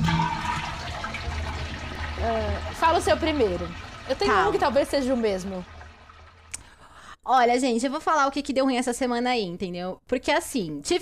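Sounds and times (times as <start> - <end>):
toilet flushing: 0.0 - 6.8
speech: 2.2 - 5.7, 7.3 - 10.9.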